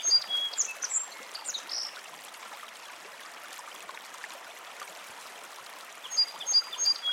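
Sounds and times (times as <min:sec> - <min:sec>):
bright bird chirps and short whistled calls: 0:00.0 - 0:01.6, 0:06.1 - 0:07.1
gently flowing river babbling over smooth stones beside a meadow: 0:00.0 - 0:07.1.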